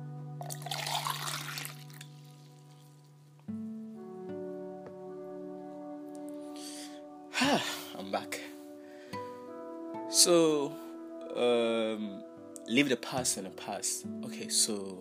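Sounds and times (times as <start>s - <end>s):
person drinking water: 0.4s - 2.1s
speech: 7.5s - 8.4s, 10.2s - 14.9s.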